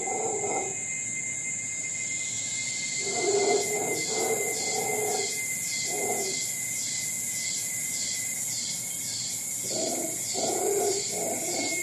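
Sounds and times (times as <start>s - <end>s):
howler monkey roaring in Costa Rica: 0.0s - 0.8s, 3.0s - 6.4s, 9.6s - 11.8s
insects trilling in Costa Rica: 0.0s - 11.8s.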